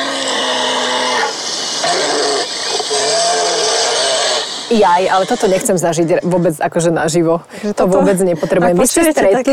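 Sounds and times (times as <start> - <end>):
brown bear growling and moaning roars: 0.0 - 6.9
speech: 4.7 - 9.5.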